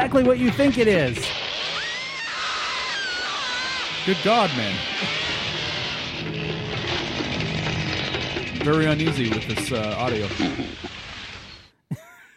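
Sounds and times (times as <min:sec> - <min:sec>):
speech: 0:00.1 - 0:01.4, 0:04.0 - 0:05.0, 0:08.6 - 0:10.9
chainsaw grinding through flesh: 0:01.2 - 0:08.5
shrill rising scream: 0:01.6 - 0:06.2.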